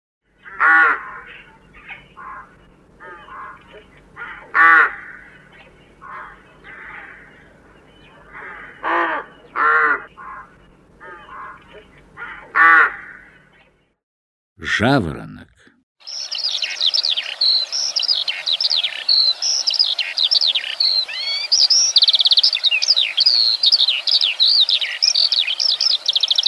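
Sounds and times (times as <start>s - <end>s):
low steady hum: 0.3s - 13.8s
rook cawing: 0.4s - 13.5s, 16.0s - 26.4s
speech: 14.8s - 15.3s.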